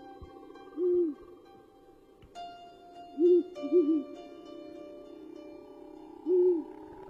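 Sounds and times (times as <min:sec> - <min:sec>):
owl hooting on the roof of a house: 0:00.4 - 0:01.4, 0:03.2 - 0:04.1, 0:06.2 - 0:07.0.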